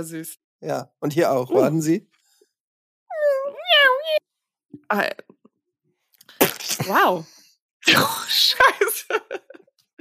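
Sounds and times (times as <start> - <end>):
speech: 0.0 - 2.2, 4.8 - 5.4, 6.7 - 9.4
small kitten meowing under a person's armpit: 3.1 - 4.2
laughter: 8.3 - 9.9.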